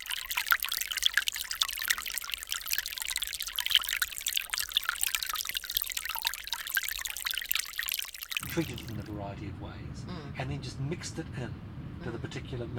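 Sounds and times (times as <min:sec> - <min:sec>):
water rippling and trickling: 0:00.0 - 0:09.1
speech: 0:08.6 - 0:12.7.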